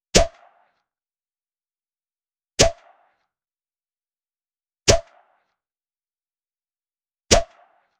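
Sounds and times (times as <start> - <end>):
launcher pop: 0.1 - 0.8, 2.6 - 3.3, 4.9 - 5.6, 7.3 - 7.9.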